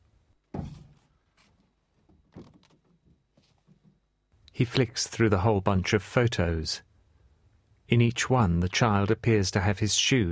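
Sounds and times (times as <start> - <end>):
soft knock: 0.5 - 1.0
tool shed door opening: 0.5 - 1.0
speech: 4.6 - 6.9, 7.9 - 10.2.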